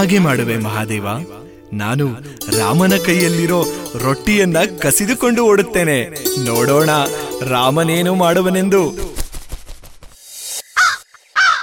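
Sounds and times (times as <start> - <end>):
speech: 0.0 - 9.1
crow cawing: 10.8 - 11.6.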